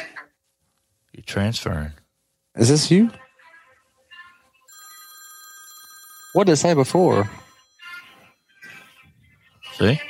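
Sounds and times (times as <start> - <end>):
speech: 1.3 - 2.0, 2.6 - 3.2, 6.3 - 7.4, 9.8 - 10.0
telephone ringing with an electronic trill: 4.7 - 8.9.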